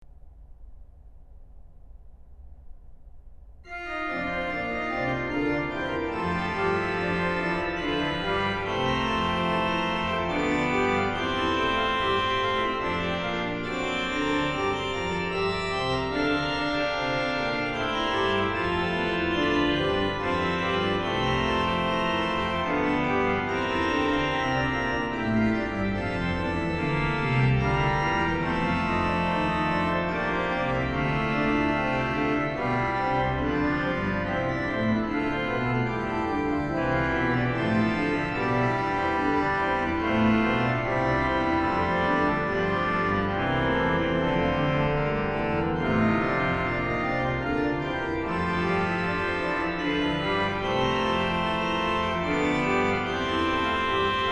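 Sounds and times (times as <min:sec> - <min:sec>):
organ piece in Litomysl: 0:03.6 - 0:54.3.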